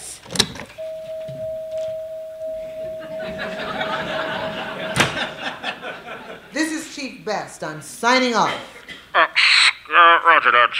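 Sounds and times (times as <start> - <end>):
steady electronic chime: 0.8 - 5.6
laughter: 2.6 - 6.9
door thump shutting: 4.9 - 5.4
speech: 7.2 - 10.7.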